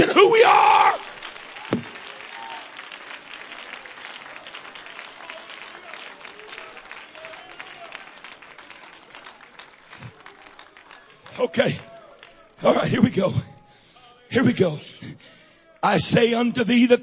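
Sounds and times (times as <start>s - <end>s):
crowd clapping: 0.0s - 13.3s
speech: 11.5s - 11.9s, 12.6s - 13.5s, 14.3s - 17.0s.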